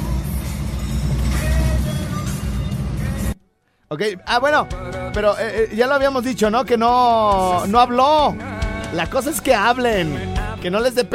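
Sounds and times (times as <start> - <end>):
low rumble of road noise inside a moving car: 0.0 - 3.4
speech: 3.9 - 11.1.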